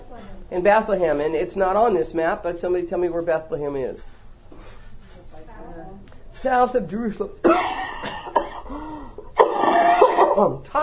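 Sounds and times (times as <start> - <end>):
speech: 0.5 - 4.8, 5.6 - 7.9, 10.4 - 10.8
person clearing throat: 7.4 - 10.6
person coughing: 7.4 - 10.6.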